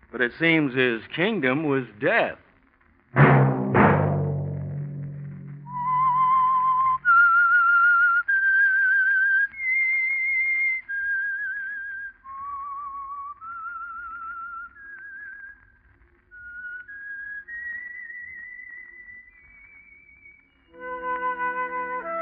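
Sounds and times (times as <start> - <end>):
speech: 0.2 - 2.4
two sharp opening musical hits: 3.2 - 7.1
whistled radio program theme melody: 5.6 - 15.6, 16.3 - 22.2.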